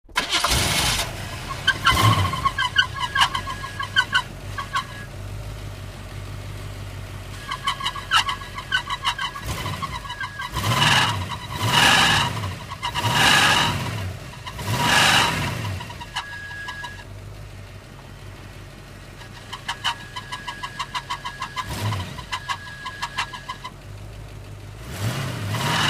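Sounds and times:
car engine with a bad starter starting: 0:00.0 - 0:25.8.

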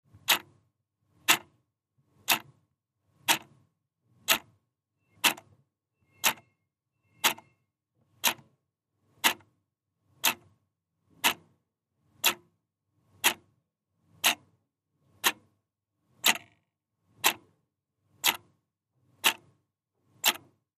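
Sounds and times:
clock ticking: 0:00.2 - 0:00.6, 0:01.2 - 0:01.6, 0:02.2 - 0:02.6, 0:03.2 - 0:03.6, 0:04.2 - 0:07.6, 0:08.2 - 0:08.6, 0:09.2 - 0:09.6, 0:10.2 - 0:10.6, 0:11.2 - 0:11.6, 0:12.2 - 0:12.6, 0:13.2 - 0:13.5, 0:14.2 - 0:14.5, 0:15.2 - 0:15.6, 0:16.2 - 0:16.6, 0:17.2 - 0:17.5, 0:18.2 - 0:18.5, 0:19.2 - 0:19.5, 0:20.2 - 0:20.6.

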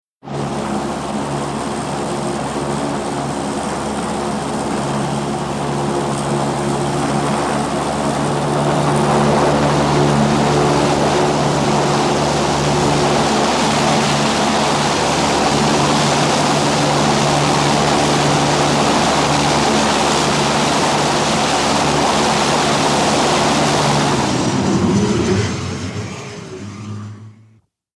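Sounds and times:
UH1 helicopter idling, lifting off and flying away: 0:00.2 - 0:27.6.

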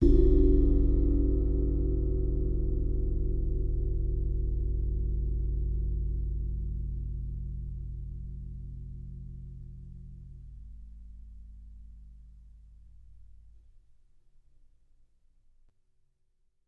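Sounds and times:
18 cymbal bell bowed: 0:00.0 - 0:11.7.

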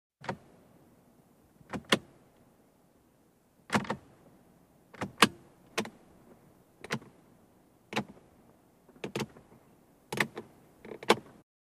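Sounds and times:
car dashboard switches: 0:00.2 - 0:00.5, 0:01.6 - 0:02.1, 0:03.7 - 0:04.1, 0:04.9 - 0:06.0, 0:06.8 - 0:07.1, 0:07.9 - 0:08.2, 0:08.9 - 0:09.4, 0:10.1 - 0:11.4.

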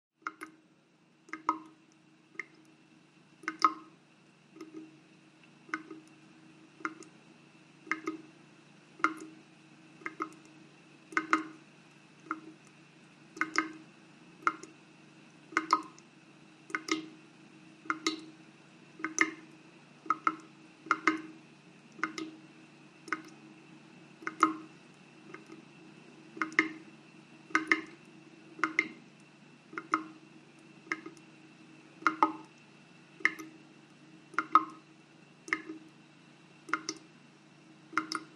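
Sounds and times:
water dripping: 0:00.2 - 0:38.3.

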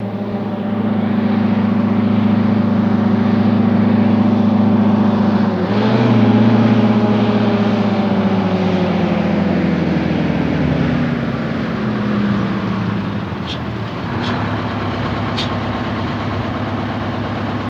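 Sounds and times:
diesel truck idling: 0:00.0 - 0:17.6.

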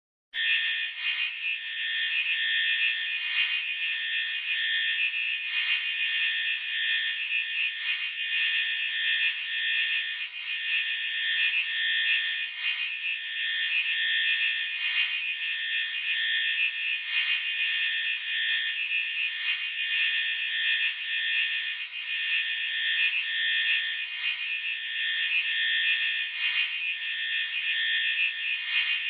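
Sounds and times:
alarm beep pulse: 0:00.4 - 0:29.0.

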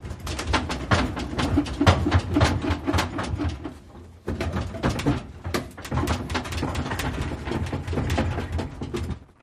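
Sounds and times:
metal cart: 0:00.0 - 0:09.4.

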